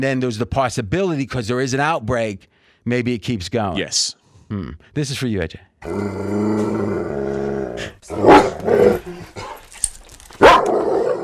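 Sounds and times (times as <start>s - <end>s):
speech: 0.0s - 9.5s
dog growling low: 5.8s - 9.6s
dog barking loud sharp barks: 8.2s - 8.6s, 10.4s - 11.2s.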